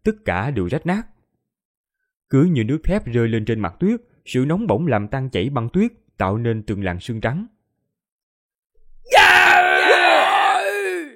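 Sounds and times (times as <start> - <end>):
speech: 0.0 - 1.1, 2.3 - 7.6
wounded old men screaming: 9.1 - 11.1.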